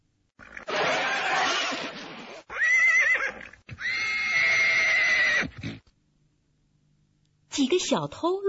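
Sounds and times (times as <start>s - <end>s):
horse pulling a plough in a field neighing: 0.4s - 5.9s
speech: 7.7s - 8.4s.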